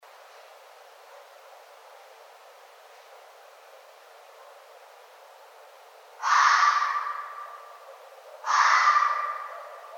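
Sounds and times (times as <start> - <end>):
red fox giving harsh hoarse barks: 6.2 - 9.9.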